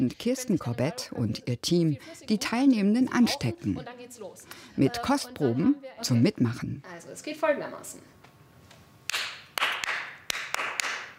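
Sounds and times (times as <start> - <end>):
speech: 0.0 - 8.2
group clapping a rhythm in unison in a reverberant room: 9.0 - 11.1.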